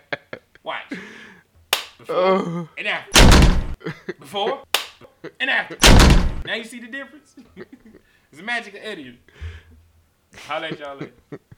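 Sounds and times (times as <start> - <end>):
speech: 0.7 - 1.2, 2.0 - 9.6, 10.4 - 11.5
sharp hand claps standing in for door closing: 1.7 - 2.0, 4.8 - 5.0.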